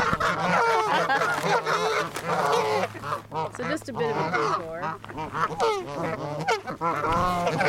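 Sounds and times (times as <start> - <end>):
geese honking by a pond: 0.0 - 7.6
laughter: 0.6 - 1.6
speech: 3.8 - 7.6.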